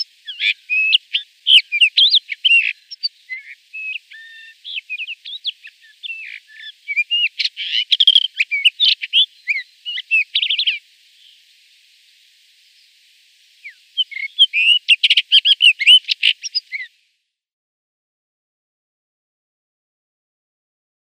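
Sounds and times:
rufous-tailed rock thrush singing: 0.0s - 11.4s, 13.6s - 16.9s.

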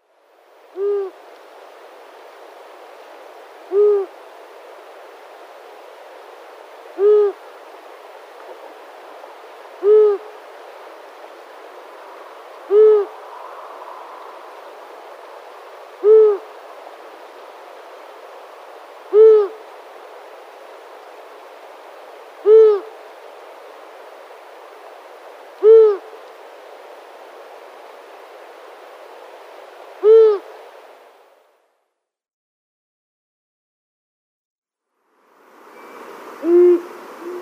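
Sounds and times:
male Long-eared Owl display call: 0.7s - 1.2s, 3.6s - 4.2s, 7.0s - 7.4s, 9.8s - 10.3s, 12.2s - 15.2s, 15.9s - 16.7s, 19.0s - 19.7s, 22.4s - 23.0s, 25.6s - 26.2s, 30.0s - 30.6s, 35.8s - 37.4s.

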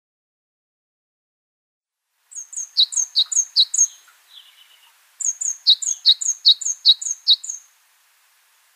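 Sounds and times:
Tenerife blue tit singing: 2.3s - 7.7s.

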